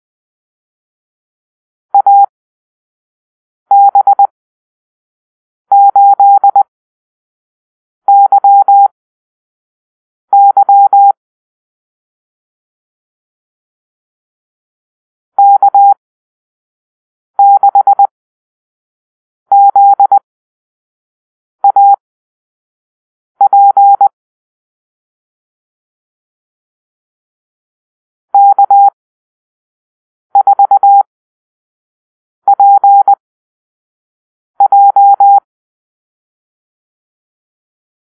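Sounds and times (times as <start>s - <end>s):
morse code beeps in a call-sign drill: 2.0s - 2.3s, 3.7s - 4.3s, 5.7s - 6.7s, 8.1s - 8.9s, 10.4s - 11.2s, 15.4s - 16.0s, 17.4s - 18.1s, 19.5s - 20.2s, 21.6s - 22.0s, 23.4s - 24.2s, 28.4s - 29.0s, 30.4s - 31.1s, 32.5s - 33.2s, 34.6s - 35.4s.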